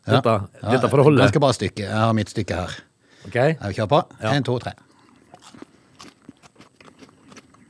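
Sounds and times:
speech: 0.0 - 4.9
biting and chewing a piece of food: 4.8 - 7.6.

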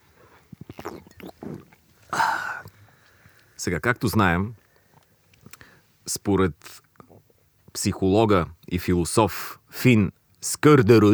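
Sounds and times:
quick gulping swallows of a drink: 0.2 - 3.5
breathy satisfied exhale: 2.1 - 3.6
speech: 3.6 - 4.6, 6.1 - 6.8, 7.8 - 11.1.

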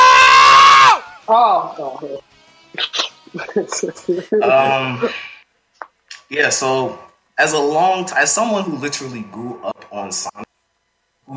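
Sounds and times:
cartoon villain screaming in a played clip: 0.0 - 1.1
agitated shouting: 0.0 - 1.2
speech: 1.3 - 5.3, 6.3 - 10.4.

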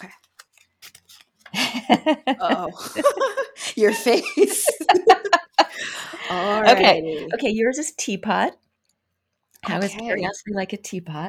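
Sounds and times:
paper slips rustling as drawn out of a big jar: 0.0 - 1.8
laughter: 1.5 - 7.5
speech: 1.8 - 5.4, 6.3 - 8.6, 9.6 - 11.2.

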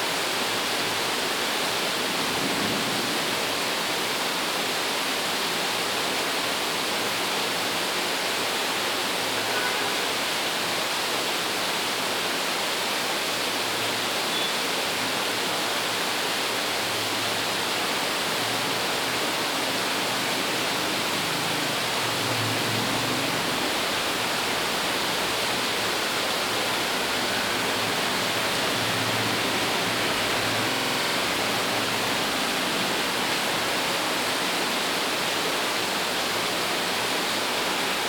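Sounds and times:
heavy rain falling in Bangalore: 0.0 - 38.0.

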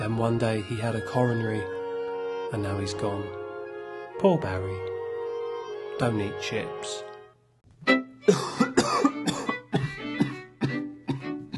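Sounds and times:
speech: 0.1 - 1.8, 2.5 - 3.4, 4.2 - 4.9, 6.0 - 7.1, 7.8 - 8.6
person coughing with harsh raspy hacks: 8.3 - 11.5
throat clearing: 8.3 - 11.5.

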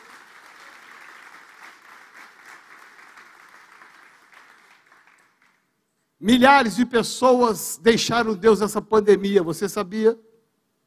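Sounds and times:
audience applauding: 0.0 - 5.8
speech: 6.2 - 10.3.

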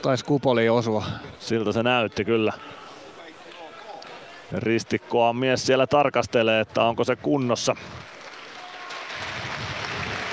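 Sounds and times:
speech: 0.0 - 2.8, 4.5 - 8.1
large home crowd applauding at an ice hockey game: 7.6 - 10.3.

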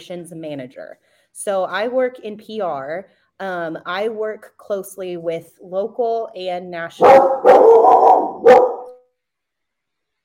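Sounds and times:
speech: 0.0 - 8.6
border collie barking loudly: 7.0 - 9.0.

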